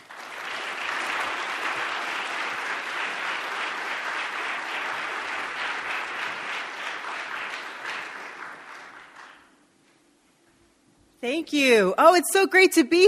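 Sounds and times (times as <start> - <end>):
large audience applause welcoming a speaker: 0.0 - 9.6
speech: 11.2 - 13.0.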